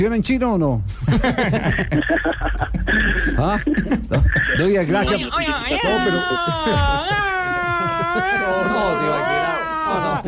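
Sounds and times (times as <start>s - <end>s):
speech: 0.0s - 7.4s, 8.1s - 10.2s
laughter: 1.1s - 10.2s
person bawling and wailing in an imitated cry: 4.2s - 10.2s.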